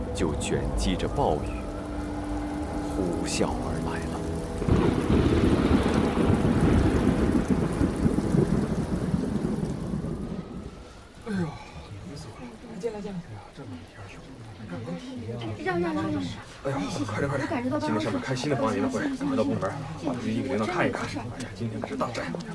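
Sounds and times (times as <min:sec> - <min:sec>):
low thunder rumbling: 0:00.0 - 0:12.7
typhoon's heavy downpour in Yuhang: 0:00.0 - 0:22.5.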